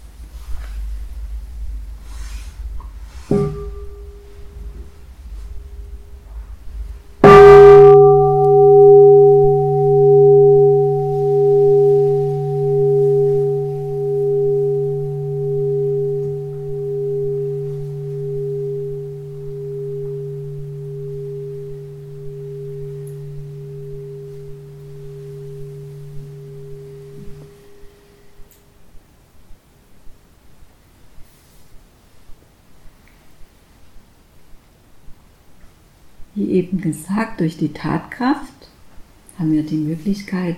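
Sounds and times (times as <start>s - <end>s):
bell struck and ringing with a deep humming tone: 7.2s - 27.9s
speech: 36.8s - 38.5s, 39.4s - 40.5s.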